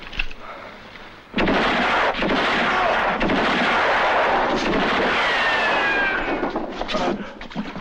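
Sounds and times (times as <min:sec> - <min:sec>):
pistol gunshots in a film scene: 0:01.3 - 0:07.0.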